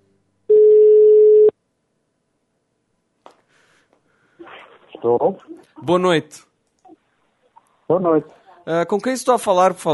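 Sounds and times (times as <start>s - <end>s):
telephone tone while a call is placed: 0.5s - 1.5s
speech: 5.0s - 6.5s, 7.9s - 9.9s.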